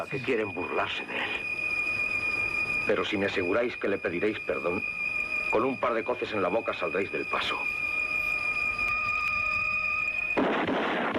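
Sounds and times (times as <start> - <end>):
speech: 0.0 - 1.6, 2.9 - 7.8
steady high whine: 0.0 - 11.1
movie-style gunshot sound effect: 10.4 - 11.1.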